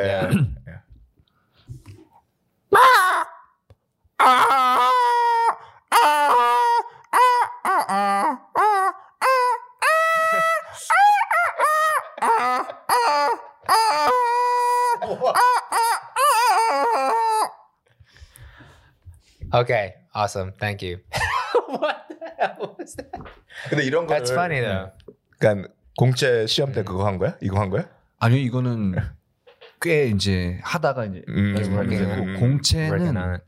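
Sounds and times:
speech: 0.0 - 0.6, 19.7 - 21.1, 22.5 - 29.1, 29.8 - 33.4
squeezed rubber chicken toy shrieking and honking: 2.7 - 3.6, 4.2 - 17.8
laughter: 7.4 - 17.4, 21.1 - 24.3.

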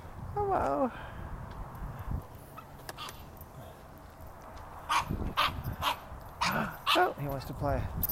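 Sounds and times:
person talking: 0.3 - 1.0, 6.5 - 8.0
small puppy yipping and barking: 4.9 - 7.0.

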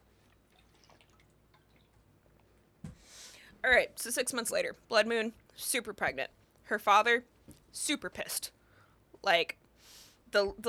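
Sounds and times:
faint liquid drips: 0.0 - 2.8
speech: 3.6 - 8.6, 9.2 - 9.6, 10.3 - 10.6.

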